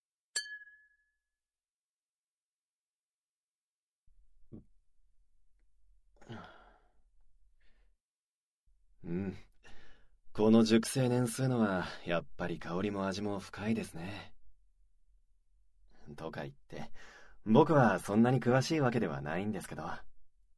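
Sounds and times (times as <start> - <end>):
whisky glasses clinking in a toast: 0.4 - 1.0
person sighing: 6.2 - 7.0, 9.0 - 10.0
quiet gasp: 6.2 - 7.0, 9.6 - 10.1
speech: 10.4 - 14.4, 16.1 - 20.1.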